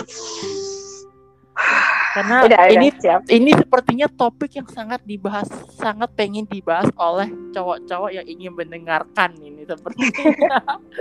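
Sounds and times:
long airy breath drawn in: 1.6 - 2.4
louder rushing exhale: 1.6 - 2.4
speech: 2.2 - 10.9
laughter: 9.9 - 10.9.

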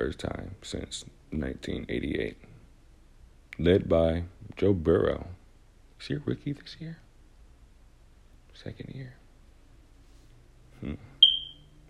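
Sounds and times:
speech: 0.0 - 2.5, 3.6 - 5.4, 6.0 - 7.0, 8.6 - 9.2, 10.8 - 11.1
smoke detector chirping for a new battery: 11.2 - 11.8.

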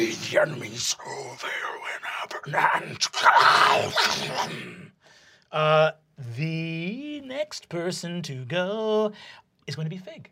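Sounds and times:
speech: 0.1 - 10.2
person imitating an owlbear growl: 2.5 - 4.9.

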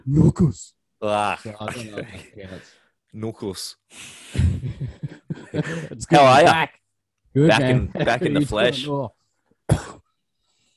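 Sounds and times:
speech: 0.1 - 6.8, 7.4 - 10.0
laughter: 1.4 - 2.5, 4.4 - 6.4, 7.6 - 8.8
person coughing into the microphone: 9.7 - 10.1.

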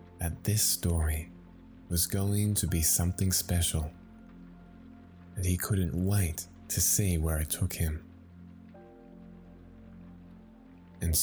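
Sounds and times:
light rain pattering: 0.0 - 11.2
speech: 0.2 - 4.0, 5.4 - 8.1, 11.0 - 11.2.

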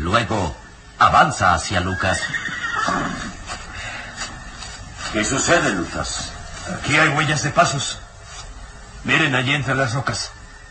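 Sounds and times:
outdoor rustle: 0.0 - 10.6
speech: 0.1 - 3.1, 5.1 - 8.0, 9.0 - 10.4
horse neighing: 1.7 - 3.8
hoof clops: 2.1 - 7.0.

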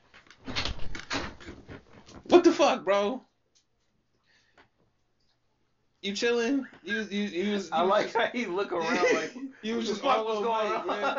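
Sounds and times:
door being opened with a scraping rattling rush: 0.4 - 2.0
speech: 2.3 - 3.3, 6.0 - 11.1
laughter: 8.7 - 11.1.

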